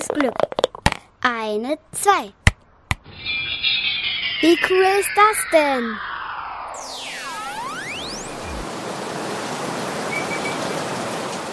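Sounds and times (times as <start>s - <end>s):
speech: 0.1s - 0.5s, 1.2s - 2.4s, 4.4s - 6.1s
swooping electronic tone sliding down and back up: 3.1s - 8.7s
heavy rain pouring: 7.0s - 11.5s.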